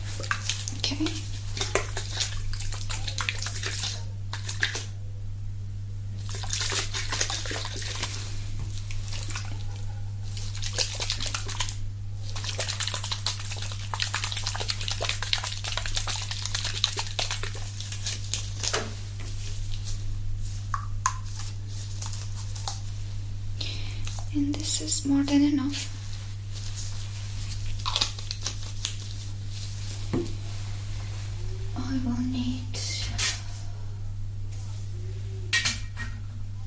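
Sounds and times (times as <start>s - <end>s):
liquids poured and worked into hair: 0.0s - 5.0s, 6.2s - 22.9s, 24.0s - 30.1s
low steady hum: 0.0s - 36.6s
speech: 0.9s - 1.3s, 24.8s - 25.9s.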